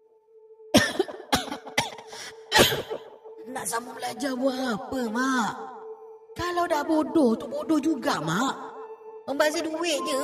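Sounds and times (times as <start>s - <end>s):
woman coughing harshly on stairs: 0.7s - 3.3s
speech: 2.6s - 5.7s, 6.4s - 8.7s, 9.3s - 10.2s.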